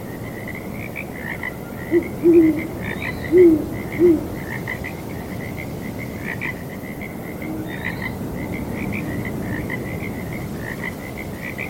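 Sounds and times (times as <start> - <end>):
steady chorus of frogs calling: 0.0 - 11.6
owl giving low soft hoots on a breezy night: 1.8 - 4.4, 7.4 - 8.1.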